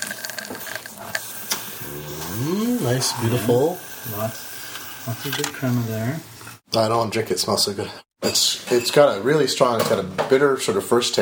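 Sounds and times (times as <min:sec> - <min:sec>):
steam wand of a La Pavoni espresso machine hissing: 0:00.6 - 0:06.1
speech: 0:03.0 - 0:04.5, 0:05.0 - 0:11.2.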